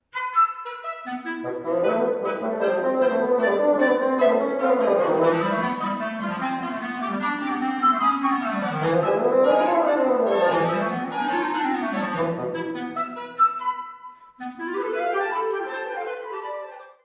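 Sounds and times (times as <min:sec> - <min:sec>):
woodwind quartet playing: 0:00.1 - 0:17.0.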